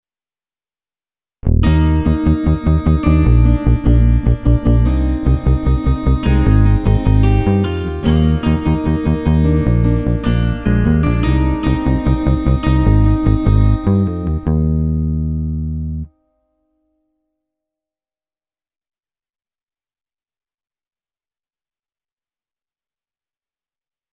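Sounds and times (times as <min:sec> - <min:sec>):
bass guitar: 0:01.4 - 0:16.1.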